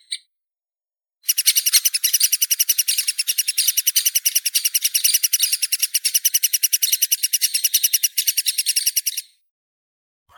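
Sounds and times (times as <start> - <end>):
three-toed woodpecker Picoides tridactylus giving short sharp kip notes: 1.3 - 9.2.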